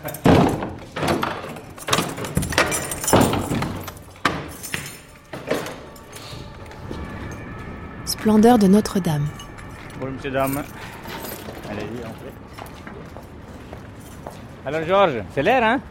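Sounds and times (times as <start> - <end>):
heavy door being unlocked and opened with clunks rattles and scraping thuds: 0.0 - 6.7
speech: 8.2 - 9.4, 10.0 - 10.8, 11.7 - 12.6, 14.6 - 15.8.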